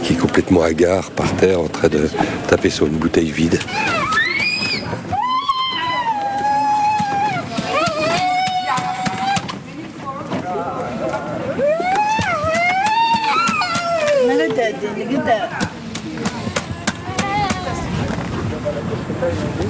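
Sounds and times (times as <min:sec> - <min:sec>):
busy crowd chatter: 0:00.0 - 0:19.6
street noise: 0:00.0 - 0:19.6
speech: 0:00.4 - 0:04.2
arriving ambulance siren wailing: 0:11.6 - 0:14.2.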